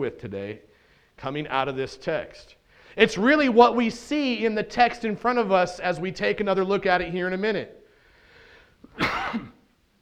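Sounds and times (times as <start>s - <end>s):
speech: 0.0s - 7.8s, 8.9s - 9.5s
quiet room hiss: 0.0s - 9.9s
harsh cough: 8.9s - 9.7s.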